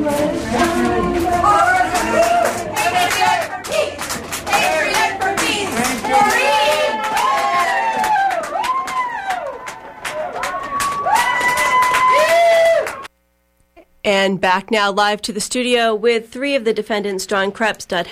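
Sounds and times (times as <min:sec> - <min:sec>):
crowd chanting: 0:00.0 - 0:08.3
large outdoor crowd cheering and shouting: 0:00.0 - 0:13.1
scattered clapping: 0:00.5 - 0:13.1
speech: 0:14.4 - 0:18.0.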